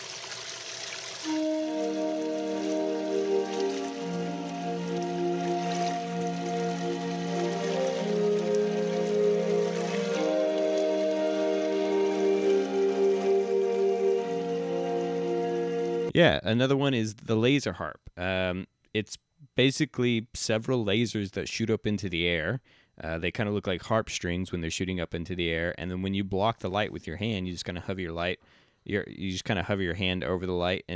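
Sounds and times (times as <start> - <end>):
soft sustained tones from a stainless steel water-jet pipe hydrophone: 1.2 - 16.1
speech: 16.2 - 30.9.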